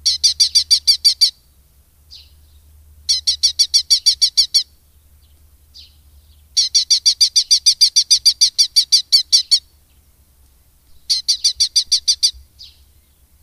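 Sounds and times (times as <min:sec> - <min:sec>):
red-footed falcon calling in sharp high chattering notes: 0:00.0 - 0:01.4, 0:03.1 - 0:04.7, 0:06.6 - 0:09.7, 0:11.1 - 0:12.4.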